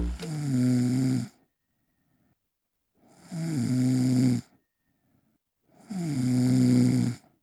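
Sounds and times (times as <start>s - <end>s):
person snoring: 0.1s - 1.4s, 3.1s - 4.6s, 5.8s - 7.3s.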